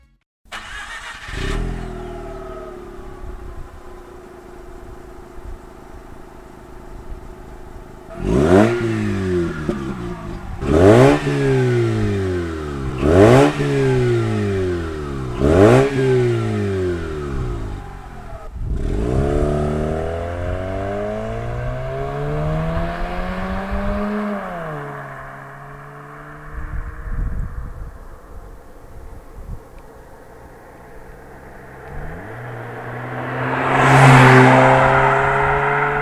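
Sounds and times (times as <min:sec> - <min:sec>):
rotary car engine revving with raspy aftermarket titanium exhaust: 0:00.5 - 0:29.0, 0:29.7 - 0:36.0.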